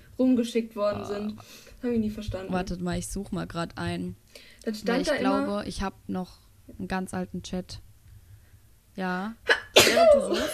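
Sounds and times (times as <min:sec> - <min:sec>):
speech: 0:00.2 - 0:07.8, 0:09.0 - 0:10.5
person sneezing: 0:09.5 - 0:10.5.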